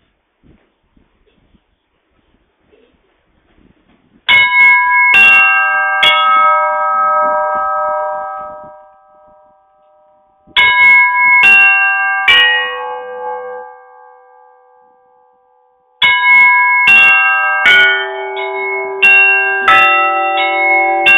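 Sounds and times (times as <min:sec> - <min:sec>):
church bells pealing: 0:04.3 - 0:21.1.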